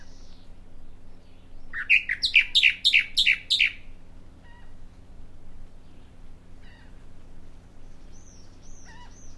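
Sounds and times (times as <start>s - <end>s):
Bahama mockingbird song: 0.0s - 4.8s, 7.8s - 9.3s
faint low hum: 0.0s - 9.3s.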